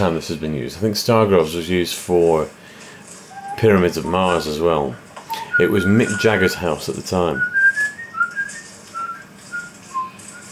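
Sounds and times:
speech: 0:00.0 - 0:02.6, 0:03.6 - 0:07.6
man whistling a ragtime tune: 0:03.3 - 0:04.5, 0:05.3 - 0:10.5.

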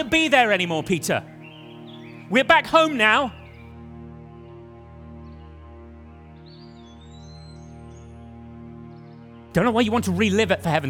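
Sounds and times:
speech: 0:00.0 - 0:01.4, 0:02.3 - 0:03.4, 0:09.6 - 0:10.8
bird chirping in a garden with trees: 0:00.0 - 0:10.8
rising whistled bird call: 0:01.2 - 0:03.8, 0:06.4 - 0:09.5
loud steady low humming drone: 0:03.3 - 0:10.6.

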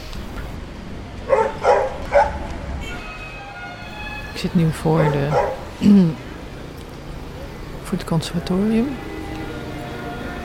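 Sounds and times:
steady outdoor street hum: 0:00.0 - 0:10.4
dogs barking on a street: 0:01.2 - 0:02.5, 0:04.9 - 0:05.8
speech: 0:04.4 - 0:06.2, 0:07.9 - 0:09.1.

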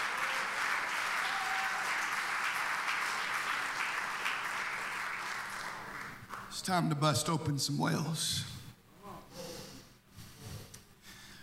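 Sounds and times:
large crowd applause: 0:00.0 - 0:06.5
speech: 0:06.6 - 0:08.6.

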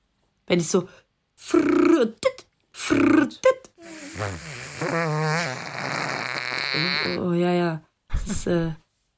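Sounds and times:
speech: 0:00.5 - 0:03.6, 0:04.2 - 0:05.6, 0:06.7 - 0:08.8
voice imitating a monster's flatulence: 0:02.8 - 0:07.3.

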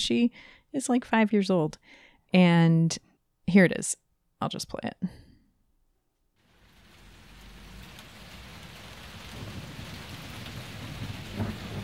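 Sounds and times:
speech: 0:00.0 - 0:05.2
steady dense rain falling: 0:06.4 - 0:11.8
low rumbling: 0:06.5 - 0:11.8.

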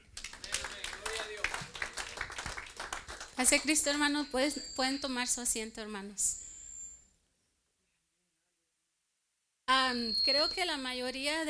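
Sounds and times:
church audience including children applauding: 0:00.0 - 0:03.6
speech: 0:03.4 - 0:06.4, 0:09.9 - 0:11.4.

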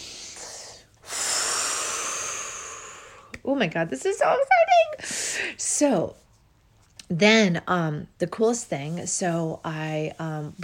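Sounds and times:
person taking a deep breath: 0:00.0 - 0:03.3
speech: 0:03.5 - 0:06.2, 0:07.1 - 0:10.6.

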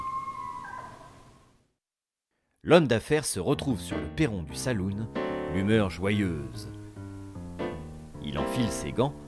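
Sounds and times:
coyote howling: 0:00.0 - 0:01.4
speech: 0:02.6 - 0:06.8, 0:08.2 - 0:09.2.

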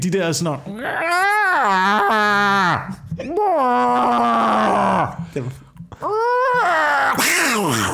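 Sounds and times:
speech: 0:00.0 - 0:07.9
person imitating cats yowling before a fight: 0:00.7 - 0:05.2, 0:06.0 - 0:07.9.

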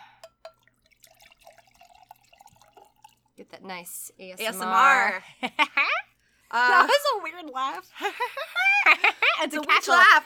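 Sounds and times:
drink being poured: 0:00.0 - 0:03.4
speech: 0:03.4 - 0:05.8, 0:06.5 - 0:10.2
laughter: 0:04.6 - 0:07.2, 0:07.9 - 0:10.0.

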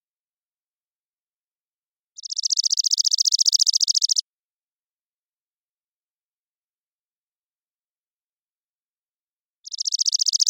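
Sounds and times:
Chipping Sparrow Spizella passerina trilling song in Washington: 0:02.2 - 0:04.2, 0:09.6 - 0:10.4.

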